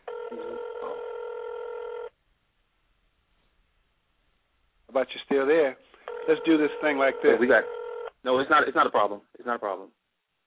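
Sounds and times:
steady electronic telephone tone on a narrow phone line: 0.0s - 2.1s, 6.1s - 8.1s
speech: 5.0s - 10.0s.

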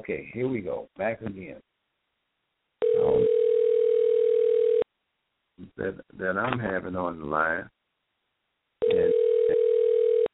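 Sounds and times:
speech: 0.0s - 1.7s, 5.6s - 7.8s
telephone dial tone: 2.8s - 4.8s, 8.8s - 10.3s.

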